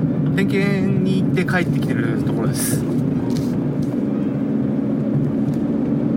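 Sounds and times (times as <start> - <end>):
low rumble of road and engine noise inside a moving car: 0.0 - 6.1
speech: 0.4 - 3.9.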